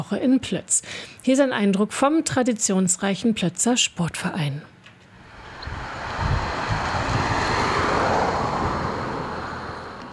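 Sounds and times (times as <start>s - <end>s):
speech: 0.0s - 4.8s
wind gusts buffeting the microphone: 5.2s - 9.3s
wind blowing outdoors on a mild sunny evening: 5.2s - 10.1s.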